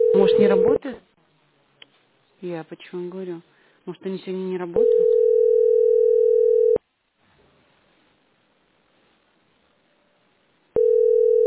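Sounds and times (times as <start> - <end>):
electronic telephone ringing tone during outgoing call: 0.0 - 0.8, 4.8 - 6.8, 10.8 - 11.4
speech: 0.2 - 1.1, 2.4 - 5.2.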